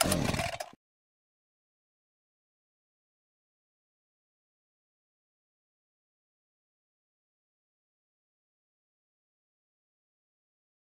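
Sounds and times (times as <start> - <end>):
saber starting: 0.0 - 0.7.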